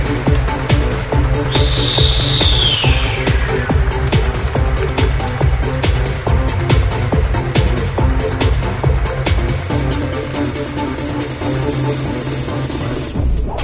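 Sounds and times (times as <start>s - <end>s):
dense steady rhythmic clattering: 0.0s - 13.5s
referee's whistle blast starting a football match: 1.4s - 4.6s.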